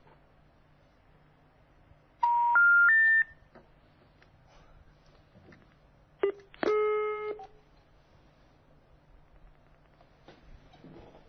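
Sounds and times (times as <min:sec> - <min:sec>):
rising electronic phone tones: 0:02.2 - 0:03.4.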